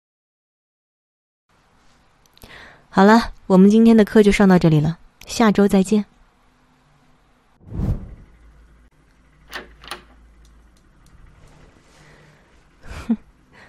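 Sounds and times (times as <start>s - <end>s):
speech: 2.4s - 6.1s
sharp latch clicks: 9.4s - 10.9s
door opening with a dull thump: 9.5s - 10.3s.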